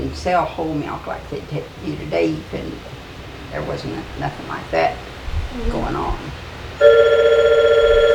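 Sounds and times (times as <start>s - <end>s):
speech: 0.1s - 7.3s
telephone ringing with a warbling electronic tone: 6.8s - 8.1s.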